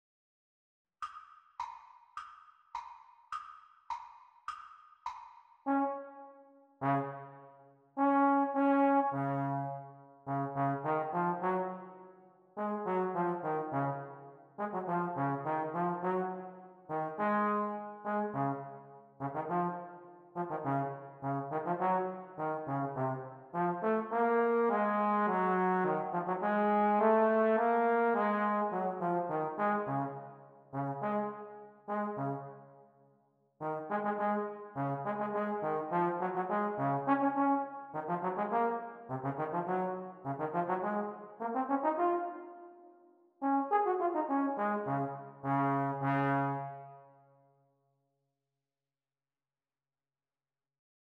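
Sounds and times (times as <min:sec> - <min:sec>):
playalong backing track for E-flat tenor horn exam: 0:05.7 - 0:32.7, 0:33.6 - 0:47.1.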